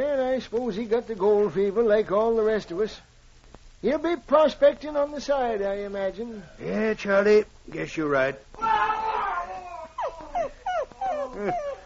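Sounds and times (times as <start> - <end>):
speech: 0.4 - 3.1, 3.8 - 8.8, 11.4 - 11.7
nervous dog whimpering anxiously: 9.4 - 11.8.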